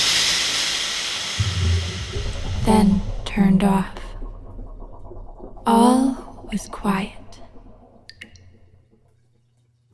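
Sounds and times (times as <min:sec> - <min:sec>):
steam hissing from a shower head in a bathroom: 0:00.0 - 0:03.2
speech: 0:02.7 - 0:04.0, 0:05.7 - 0:07.2.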